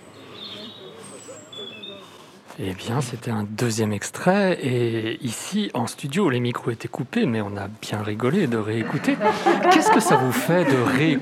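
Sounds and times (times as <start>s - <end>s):
small bird chirping high-pitched tip-tip-tip: 0.0s - 2.0s
low murmur of noise: 0.0s - 11.2s
speech: 2.6s - 11.2s
laughter: 8.6s - 11.2s.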